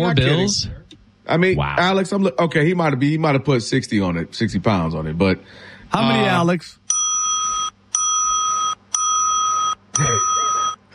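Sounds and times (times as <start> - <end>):
speech: 0.0 - 6.8
bell ringing: 6.9 - 10.8.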